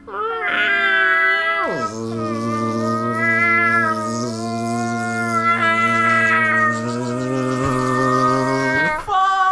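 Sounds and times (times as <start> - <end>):
feral cat caterwauling in a long yowl: 0.0 - 9.1.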